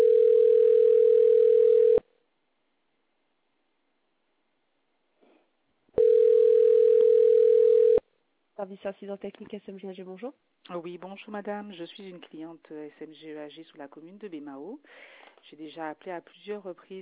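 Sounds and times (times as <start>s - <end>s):
steady mid-pitched telephone tone on an answering machine line: 0.0s - 2.0s, 6.0s - 8.0s
speech: 8.6s - 17.0s.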